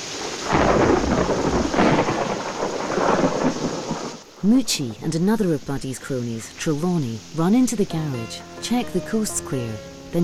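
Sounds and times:
deep thunder rumbling at night: 0.0 - 4.5
steady hissing rain at night near a garage doorway: 0.0 - 10.2
speech: 4.4 - 10.2.

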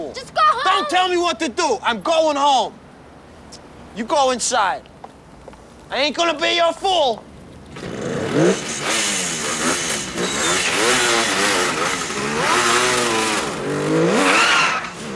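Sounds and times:
speech: 0.1 - 2.8, 3.5 - 4.9, 5.9 - 8.9
car engine revving as the car speeds away: 7.7 - 15.1.

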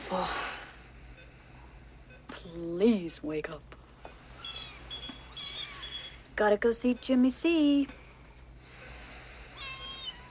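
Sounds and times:
low steady hum: 0.0 - 10.2
speech: 0.1 - 0.5, 2.4 - 3.8, 6.4 - 8.0
kitten meowing: 4.4 - 6.2, 9.6 - 10.2.

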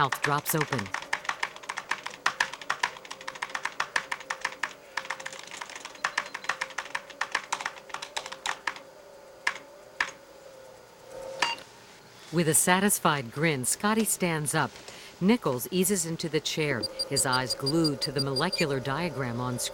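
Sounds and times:
speech: 0.0 - 1.0, 12.3 - 19.7
rapid typing on an old-fashioned computer keyboard: 0.0 - 8.8.

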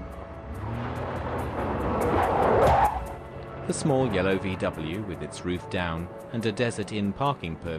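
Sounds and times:
Ford sedan engine starting: 0.0 - 5.7
speech: 3.7 - 7.7.

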